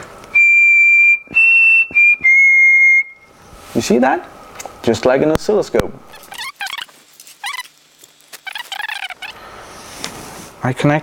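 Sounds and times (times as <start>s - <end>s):
person whistling a steady high pure tone into a computer microphone: 0.3s - 3.3s
speech: 3.8s - 6.1s, 10.7s - 11.0s.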